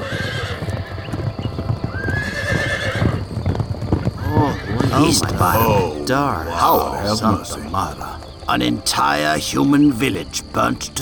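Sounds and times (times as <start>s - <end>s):
horse whinny: 0.0s - 1.1s, 1.9s - 3.2s, 4.2s - 7.2s
horses galloping as riders set off: 0.0s - 10.9s
speech: 5.0s - 10.9s.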